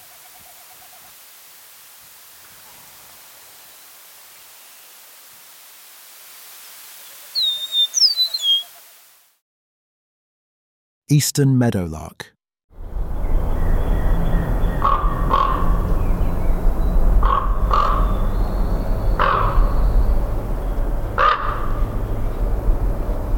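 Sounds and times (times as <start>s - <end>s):
speech: 11.1s - 12.4s
steady low rumble: 12.8s - 23.3s
Common Raven croaking at Carden Alvar Ontario: 14.6s - 16.0s, 17.2s - 22.2s.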